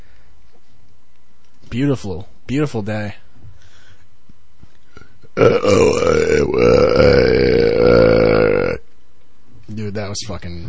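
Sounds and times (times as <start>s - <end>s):
speech: 1.7s - 3.2s, 5.4s - 8.1s, 9.8s - 10.6s
loud burp: 5.4s - 8.8s.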